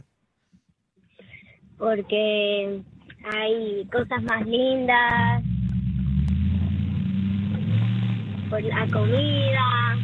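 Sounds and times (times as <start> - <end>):
speech: 1.8 - 5.4, 8.5 - 10.0
car engine revving: 3.8 - 10.0.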